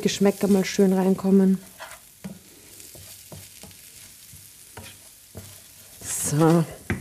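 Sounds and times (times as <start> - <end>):
speech: 0.0 - 1.7, 6.3 - 6.8
rice sizzling in a hot pan: 0.0 - 7.0
spoon scraping and stirring rice: 1.6 - 6.8.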